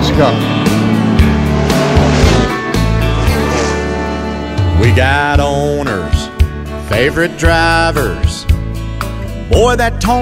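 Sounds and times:
car engine starting and revving: 0.0s - 7.8s
speech: 0.2s - 0.5s, 4.8s - 6.2s, 6.9s - 8.5s, 9.5s - 10.2s.

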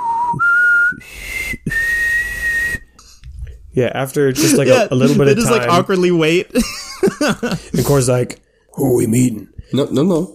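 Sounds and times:
person whistling a signal: 0.0s - 2.9s
speech: 3.8s - 10.3s
laughter: 4.3s - 8.2s.

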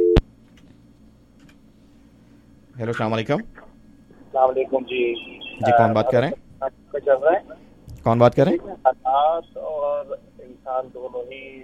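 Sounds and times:
electronic telephone line tone as a caller is put through on a call-in line: 0.0s - 0.2s
faint low hum: 0.0s - 11.6s
speech: 2.8s - 3.6s, 4.4s - 11.6s.

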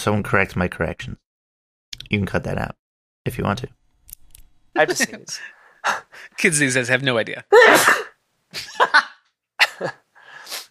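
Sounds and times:
speech: 0.0s - 1.2s, 2.1s - 3.8s, 4.7s - 9.1s, 9.8s - 10.0s
sneezes: 7.6s - 8.2s.

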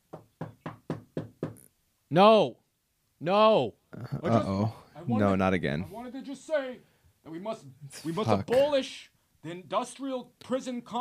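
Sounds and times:
firm knocking on a door: 0.0s - 1.6s
speech: 2.1s - 2.6s, 3.2s - 10.9s.

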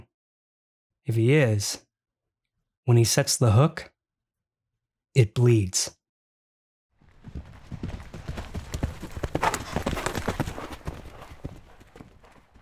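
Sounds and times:
speech: 1.1s - 1.9s, 2.9s - 3.9s, 5.2s - 6.0s
horse hooves clip-clopping: 7.0s - 12.6s.

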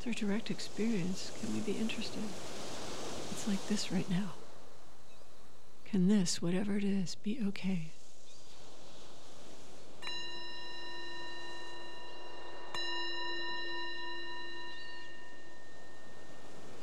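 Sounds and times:
speech: 0.0s - 2.7s, 3.3s - 4.4s, 5.9s - 8.0s
meditation bell ringing: 10.0s - 16.8s.

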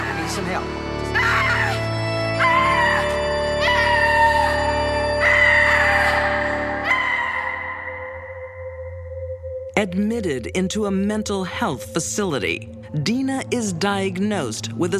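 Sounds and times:
speech: 0.4s - 1.0s, 9.8s - 14.9s
woman screaming loudly and shrilly: 1.1s - 8.3s.

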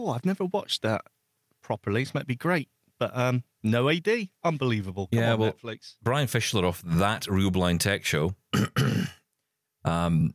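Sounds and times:
speech: 0.0s - 9.2s, 9.8s - 10.3s
person coughing: 8.5s - 9.2s.

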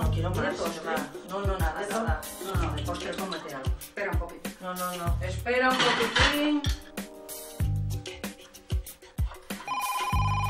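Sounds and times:
speech: 0.2s - 6.8s
telephone ringing with a bright electronic ringtone: 9.6s - 10.4s.

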